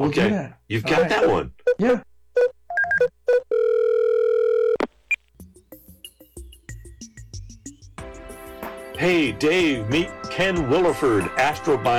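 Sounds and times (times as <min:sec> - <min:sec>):
speech: 0:00.0 - 0:02.1, 0:09.0 - 0:11.9
long steady ringing tone: 0:02.4 - 0:04.9
quick electronic dialing beeps: 0:02.4 - 0:04.9.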